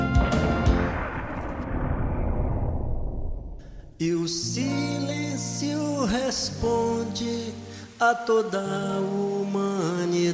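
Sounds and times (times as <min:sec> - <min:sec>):
deep heavy rumble: 0:00.0 - 0:04.2
sharp booms: 0:00.0 - 0:04.2
speech: 0:04.0 - 0:10.3.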